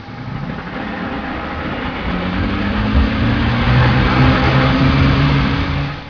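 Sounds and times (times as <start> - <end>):
boat motor: 0.0 - 6.0.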